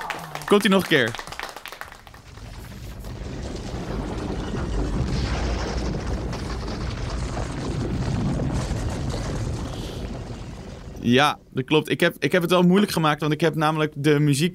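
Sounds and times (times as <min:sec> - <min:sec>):
speech: 0:00.5 - 0:01.3, 0:11.0 - 0:14.5
giant stone boulder rolling film sound effect: 0:01.9 - 0:11.8.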